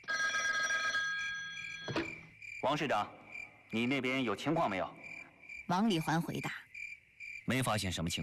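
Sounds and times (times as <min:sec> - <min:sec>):
telephone bell ringing in a sustained metallic peal: 0:00.0 - 0:02.3
speech: 0:02.6 - 0:05.0, 0:05.7 - 0:06.6, 0:07.5 - 0:08.2.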